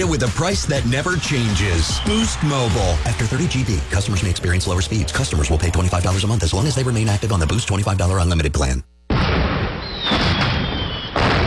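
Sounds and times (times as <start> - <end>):
speech: 0.0 - 8.9
bottle rocket firework whistle at a Fourth of July celebration: 1.3 - 3.5, 9.7 - 11.4
bottle rocket firework burst: 9.1 - 11.4.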